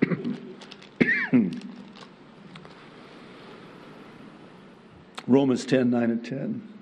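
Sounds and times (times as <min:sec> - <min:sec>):
person coughing: 0:00.0 - 0:00.4, 0:01.0 - 0:01.6
throat clearing: 0:00.0 - 0:01.7
speech: 0:05.3 - 0:06.7.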